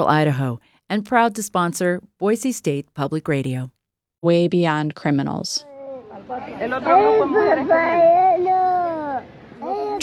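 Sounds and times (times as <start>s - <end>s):
speech: 0.0s - 5.7s, 6.3s - 8.6s
young children crying: 5.7s - 10.0s.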